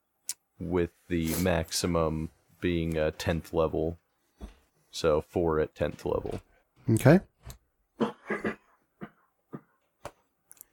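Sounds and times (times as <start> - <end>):
speech: 0.6 - 7.6
coughing from a tickle in the throat: 8.0 - 9.8.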